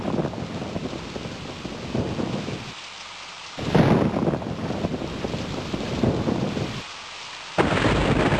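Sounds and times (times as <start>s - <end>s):
deep thunder rumbling: 0.0s - 2.7s, 3.6s - 6.8s, 7.6s - 8.3s
bursts of wind: 0.0s - 8.3s
steady heavy rain in a thunderstorm: 0.0s - 8.3s.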